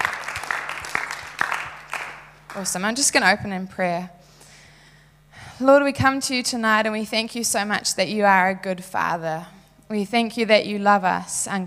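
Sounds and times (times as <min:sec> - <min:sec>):
audience applause: 0:00.0 - 0:02.7
speech: 0:02.6 - 0:04.2, 0:05.6 - 0:11.6.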